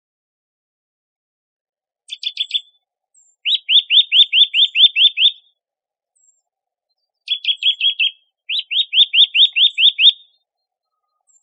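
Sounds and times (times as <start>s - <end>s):
Eurasian nuthatch (Sitta europaea) calls with clipped notes and rising whistles: 2.1s - 5.6s, 7.3s - 11.4s.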